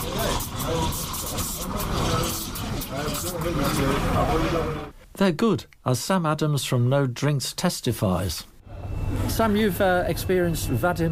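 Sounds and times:
espresso machine steam wand steaming orange and pomegranate juice: 0:00.0 - 0:03.8
speech: 0:03.3 - 0:08.5, 0:09.3 - 0:11.1.

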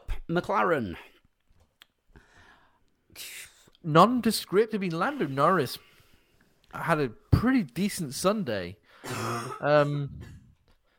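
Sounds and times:
speech: 0:00.3 - 0:01.2, 0:03.2 - 0:05.9, 0:06.7 - 0:10.3
voiced throat clearing with gravelly rasp: 0:09.1 - 0:10.6.

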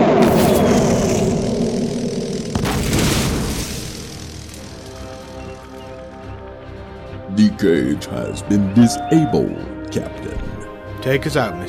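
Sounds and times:
booming blasts of exploding sci-fi torpedoes: 0:00.1 - 0:05.8
sci-fi torpedoes launching from a starship: 0:00.2 - 0:05.7
speech: 0:07.6 - 0:10.4, 0:11.0 - 0:11.6.

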